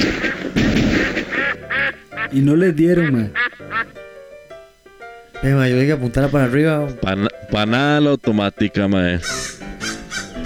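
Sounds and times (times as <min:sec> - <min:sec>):
ducks quacking: 0:00.0 - 0:04.0, 0:09.2 - 0:10.4
speech: 0:02.3 - 0:03.4, 0:05.4 - 0:09.5.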